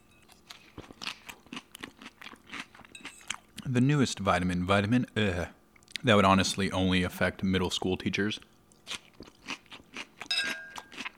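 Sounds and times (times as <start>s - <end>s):
person chewing crisp salad: 0.0s - 3.7s, 8.5s - 11.1s
speech: 3.7s - 9.0s.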